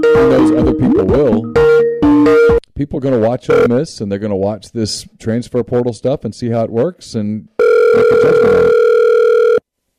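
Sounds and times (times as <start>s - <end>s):
speech: 0.1s - 1.6s, 2.8s - 8.9s
electronic telephone ring tone: 3.5s - 3.7s, 7.6s - 9.6s.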